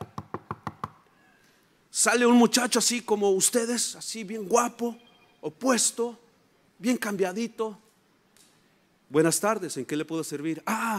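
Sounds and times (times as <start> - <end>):
knocking on a door: 0.0 - 1.0
speech: 2.0 - 6.2, 6.8 - 7.8, 9.1 - 10.9.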